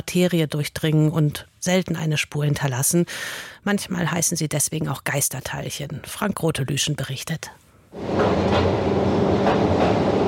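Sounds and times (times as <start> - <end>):
speech: 0.0 - 10.0
small train wheels rumbling on rails descending into an underground tunnel: 8.0 - 10.2.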